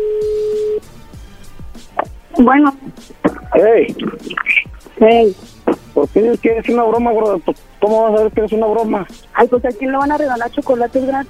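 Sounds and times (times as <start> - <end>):
telephone call ringing through: 0.0 - 0.8
speech: 2.4 - 11.2.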